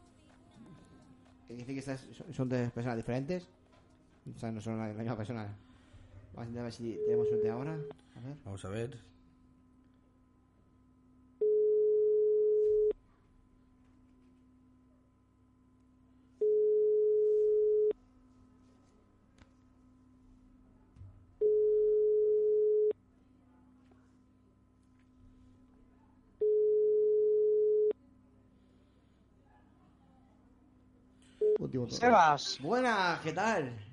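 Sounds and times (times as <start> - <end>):
faint continuous hum: 0.0 - 33.9
speech: 1.5 - 3.6, 4.2 - 5.7, 6.3 - 9.1, 31.9 - 33.9
telephone ringback tone on an outgoing call: 6.9 - 7.9, 11.4 - 12.9, 16.4 - 17.9, 21.4 - 22.9, 26.4 - 27.9.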